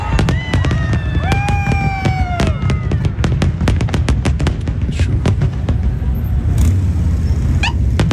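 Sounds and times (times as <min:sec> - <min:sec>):
crackling fireworks bursts: 0:00.0 - 0:08.1
fireworks exploding: 0:00.0 - 0:08.1.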